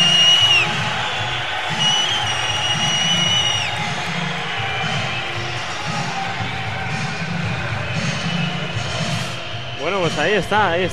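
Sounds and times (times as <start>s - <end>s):
high whistles: 0.0s - 6.3s, 6.9s - 10.4s
crowd at a technology festival cheering and clapping: 0.0s - 10.3s
speech: 10.1s - 10.9s.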